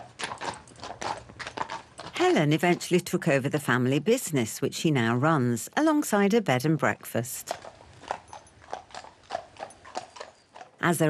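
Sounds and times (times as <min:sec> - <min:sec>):
hooves of a horse pulling a taxi cart clip-clopping: 0:00.0 - 0:03.9, 0:07.4 - 0:11.0
speech: 0:02.2 - 0:07.7, 0:10.8 - 0:11.0.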